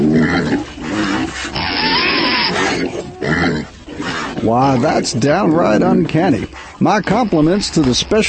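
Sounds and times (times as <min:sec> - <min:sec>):
herd of giant feral hogs grunting and snorting: 0:00.0 - 0:08.2
rumbling of giant feral hogs galloping: 0:00.0 - 0:08.2
speech: 0:04.5 - 0:08.2.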